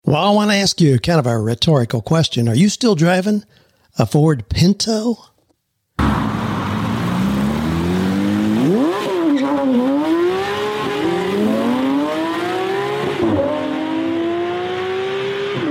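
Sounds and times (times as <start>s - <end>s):
speech: 0.1s - 5.3s
car tires squealing: 6.0s - 13.8s
car engine revving through several gear shifts: 6.0s - 15.7s.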